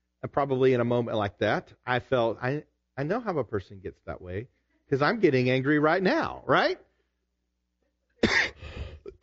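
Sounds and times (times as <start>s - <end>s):
speech: 0.2s - 6.9s
single harsh cough: 8.2s - 9.2s.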